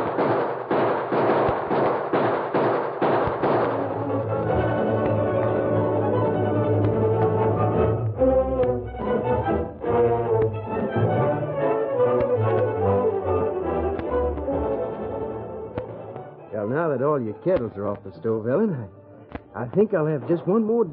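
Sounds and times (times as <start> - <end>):
gunshots: 0.0 - 5.6
orchestral music: 3.4 - 20.9
speech: 17.4 - 19.0, 19.6 - 20.9.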